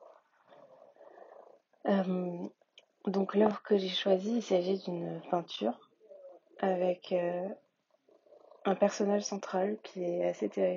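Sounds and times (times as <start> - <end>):
domestic cat purring on an art book: 0.0 - 2.6, 8.0 - 9.1
speech: 1.8 - 5.9, 6.6 - 7.6, 8.6 - 10.7.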